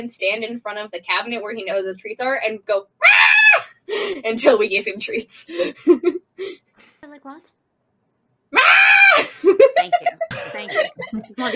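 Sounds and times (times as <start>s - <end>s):
speech: 0.0s - 7.6s, 9.2s - 11.5s
cat yowling loudly: 8.6s - 9.2s
laughter: 9.2s - 11.5s.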